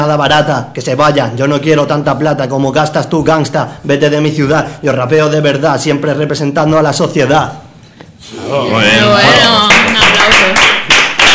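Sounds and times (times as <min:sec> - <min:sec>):
speech: 0:00.0 - 0:07.6, 0:08.2 - 0:10.7
small group applauding: 0:09.2 - 0:11.3.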